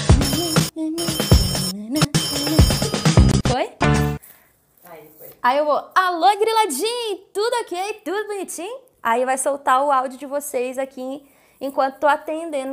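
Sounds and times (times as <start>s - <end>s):
radio show jingle: 0.1s - 4.2s
speech: 5.5s - 12.7s.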